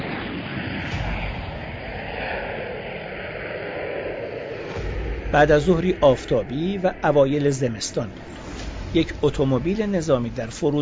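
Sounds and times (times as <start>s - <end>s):
airplane flying with engine roar: 0.0s - 10.7s
dense low rumble of airplane flying: 0.6s - 10.7s
speech: 5.3s - 10.7s.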